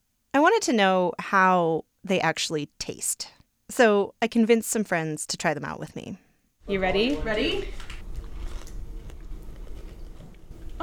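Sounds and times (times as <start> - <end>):
speech: 0.5 - 7.9
crunching while chewing crispy edible crickets: 7.8 - 10.8.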